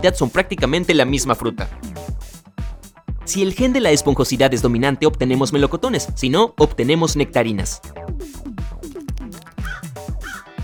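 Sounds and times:
speech: 0.0s - 2.2s, 3.3s - 8.0s
crow cawing: 9.6s - 10.6s.

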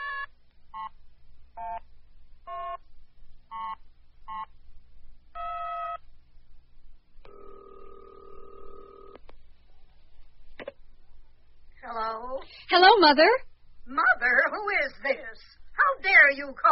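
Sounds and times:
longer steady telephone tone: 5.4s - 6.0s, 7.2s - 9.2s
speech: 13.0s - 16.6s.

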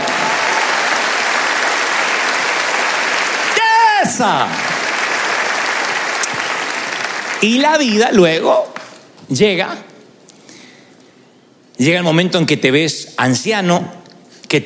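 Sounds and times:
congregation applauding: 0.0s - 8.0s
man shouting: 3.5s - 4.6s
speech: 4.2s - 4.6s, 7.4s - 8.7s, 9.3s - 9.9s, 11.8s - 14.6s.

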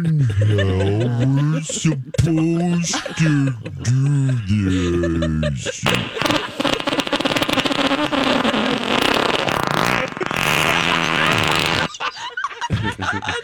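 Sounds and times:
speech: 0.0s - 7.0s
laughter: 0.0s - 13.4s
long loud buzzy fart: 5.9s - 12.0s.

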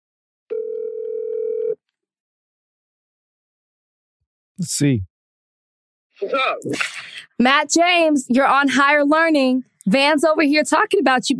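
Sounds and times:
telephone dial tone while calling: 0.5s - 1.8s
speech: 4.6s - 5.1s, 6.2s - 11.3s.

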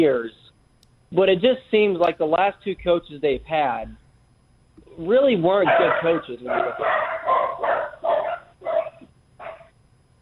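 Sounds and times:
speech: 0.0s - 0.4s, 1.1s - 4.0s, 5.0s - 7.9s
two long-haired miniature dachshunds barking: 5.6s - 9.7s.

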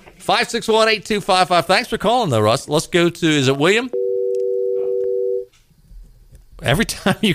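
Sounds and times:
speech: 0.2s - 4.0s, 6.6s - 7.3s
telephone dial tone: 4.0s - 5.5s.

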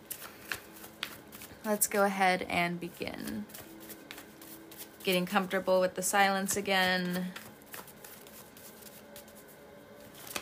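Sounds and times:
tarot cards being shuffled: 0.0s - 1.7s, 3.2s - 5.5s, 6.5s - 10.4s
speech: 1.6s - 3.6s, 5.0s - 7.4s.

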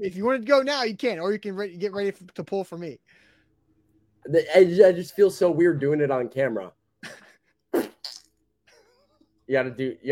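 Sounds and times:
speech: 0.0s - 3.3s, 4.2s - 7.2s, 9.5s - 10.1s
person blowing a raspberry with their mouth imitating a fart: 7.8s - 8.3s.

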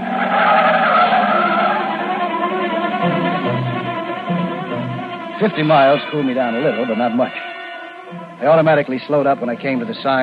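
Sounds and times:
car tires squealing as it peels away: 0.0s - 3.0s
car engine: 0.0s - 5.5s
speech: 5.4s - 7.4s, 8.1s - 10.2s.

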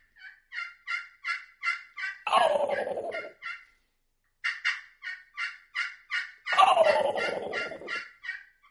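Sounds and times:
imitated turkey yelps and gobble mimicking a mature tom: 0.0s - 8.6s.

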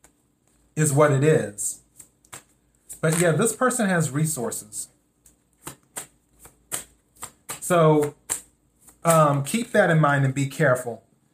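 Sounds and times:
speech: 0.8s - 1.8s, 3.0s - 4.9s, 7.7s - 8.2s, 9.0s - 11.0s
tarot cards being shuffled: 1.8s - 4.1s, 5.2s - 9.7s.

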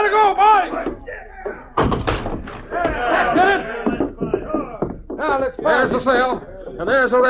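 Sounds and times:
commotion: 0.0s - 7.2s
heavy wooden battering ram smashing against a door: 1.8s - 3.0s
speech: 6.0s - 7.2s.

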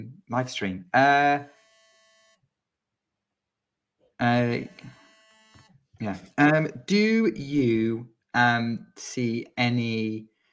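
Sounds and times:
speech: 0.0s - 1.6s, 4.2s - 5.0s, 6.0s - 10.3s
faint electronic phone ringtone for an incoming call: 1.4s - 2.4s, 4.5s - 5.7s.

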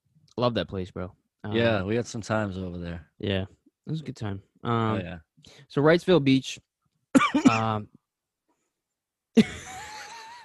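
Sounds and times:
speech: 0.4s - 6.7s, 7.3s - 8.0s, 9.4s - 9.8s
man coughing: 7.2s - 7.8s.

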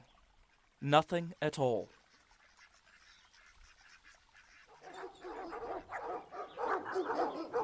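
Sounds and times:
speech: 0.8s - 2.0s
several dogs barking and yipping in a dense chorus: 4.7s - 7.6s.

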